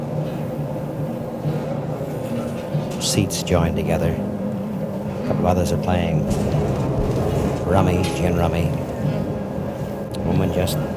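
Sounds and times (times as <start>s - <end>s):
two-section passenger train rumbling along the rails: 0.0s - 10.9s
speech: 3.0s - 4.3s, 5.3s - 6.8s, 7.7s - 8.9s, 10.3s - 10.9s
faint tonal hums: 3.2s - 10.9s.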